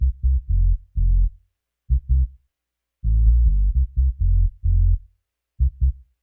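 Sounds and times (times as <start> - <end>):
low-flow italo bass music: 0.0 - 1.3, 1.9 - 2.3, 3.1 - 5.0, 5.6 - 5.9.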